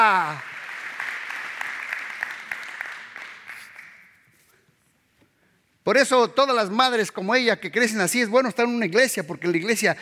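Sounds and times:
speech: 0.0s - 0.5s, 5.8s - 10.0s
audience applauding: 0.0s - 4.2s.

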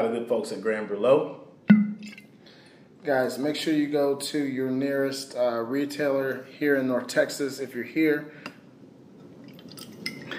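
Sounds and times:
speech: 0.0s - 1.8s, 3.0s - 8.5s
cognac being poured into glasses: 9.4s - 10.3s
glasses clinking: 9.7s - 10.3s.

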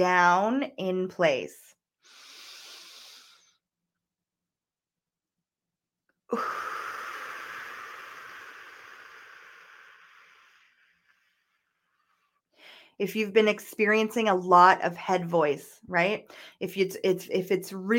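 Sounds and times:
speech: 0.0s - 1.8s, 6.3s - 6.8s, 13.0s - 17.9s
slow deep breathing exercise: 2.0s - 3.6s, 6.3s - 13.0s.

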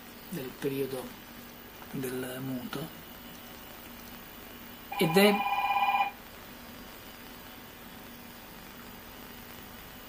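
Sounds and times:
faint hiss: 0.0s - 10.0s
speech: 0.3s - 1.3s, 1.9s - 3.0s, 5.0s - 5.5s
telephone ringing with electronic warbling tone: 4.9s - 6.2s.

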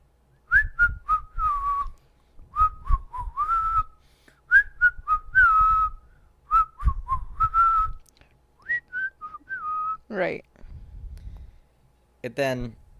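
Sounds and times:
whistled melody from a pop song: 0.4s - 8.0s, 8.6s - 10.0s
speech: 12.2s - 12.8s.

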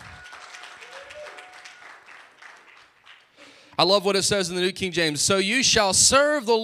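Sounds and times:
audience applause: 0.0s - 3.7s
speech: 3.8s - 6.6s.

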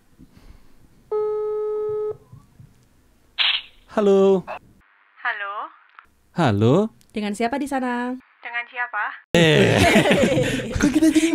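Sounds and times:
telephone buzzing tone while placing a call: 1.1s - 2.2s
speech: 4.0s - 4.6s, 6.4s - 8.3s, 8.9s - 11.3s
laughter: 9.4s - 11.3s.

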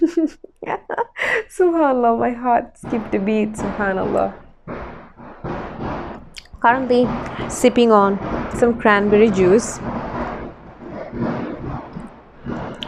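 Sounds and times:
speech: 0.1s - 0.5s, 1.6s - 4.4s, 6.6s - 9.9s
fireworks exploding outside: 2.0s - 12.8s.

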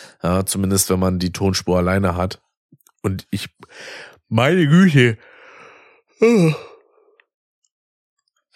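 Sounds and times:
speech: 0.2s - 2.4s, 3.0s - 5.3s, 6.2s - 6.7s
person yawning with a voiced groan: 6.2s - 6.9s.

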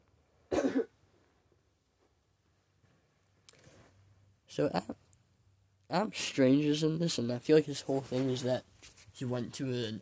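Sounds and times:
person coughing: 0.5s - 0.9s
speech: 4.6s - 5.0s, 5.9s - 10.0s.

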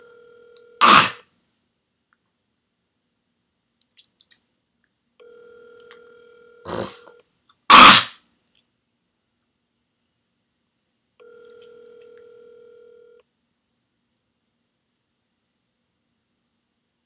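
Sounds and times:
two-pitched telephone dial tone: 0.0s - 0.8s, 5.2s - 7.2s, 11.2s - 13.2s
soft telephone dialing clicks: 11.2s - 13.2s.

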